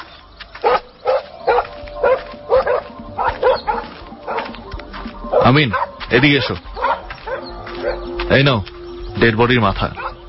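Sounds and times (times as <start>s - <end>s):
violent pet dog barking: 0.6s - 4.5s, 5.3s - 6.0s, 6.8s - 8.1s, 9.9s - 10.2s
speech: 5.5s - 6.7s, 8.3s - 10.0s.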